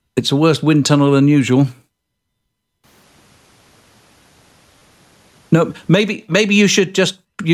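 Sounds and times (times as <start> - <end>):
speech: 0.2 - 1.8, 5.5 - 7.5
broadband static hiss from bad connection: 2.4 - 6.6.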